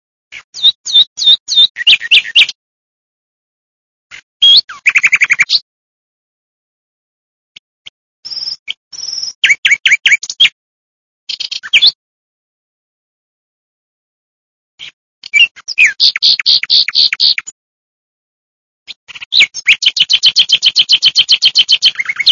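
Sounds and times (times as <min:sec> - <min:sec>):
nightingale singing: 0:00.3 - 0:02.6, 0:04.4 - 0:05.6, 0:08.2 - 0:10.6, 0:11.3 - 0:12.0, 0:14.8 - 0:17.5, 0:19.1 - 0:22.3.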